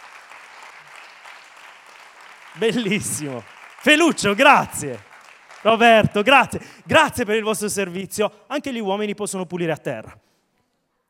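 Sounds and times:
men of a church congregation applauding: 0:00.0 - 0:07.3
speech: 0:02.6 - 0:10.3.

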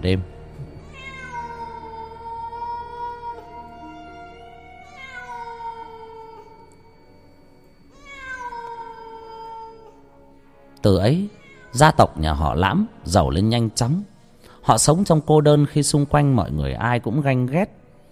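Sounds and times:
speech: 0:00.0 - 0:00.4, 0:10.8 - 0:17.8
cat meowing: 0:00.6 - 0:06.7, 0:07.9 - 0:10.1, 0:11.3 - 0:12.0.

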